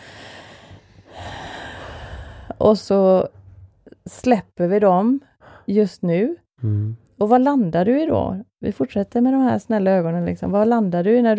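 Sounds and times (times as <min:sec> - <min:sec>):
deep breath in: 0:00.0 - 0:02.6
speech: 0:02.6 - 0:03.4, 0:04.0 - 0:11.3.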